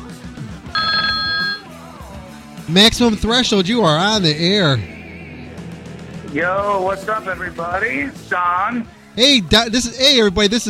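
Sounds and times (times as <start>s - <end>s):
telephone ringing on a call-in line: 0.8s - 1.7s
speech: 2.7s - 5.0s, 6.3s - 10.6s.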